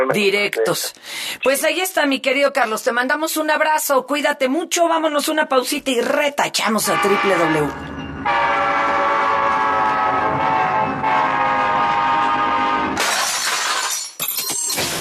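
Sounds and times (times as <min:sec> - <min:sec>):
speech: 0:00.0 - 0:08.8
train sound effect with sustained horn-like blast: 0:06.8 - 0:13.0
bright harsh shattering crash: 0:13.0 - 0:14.9.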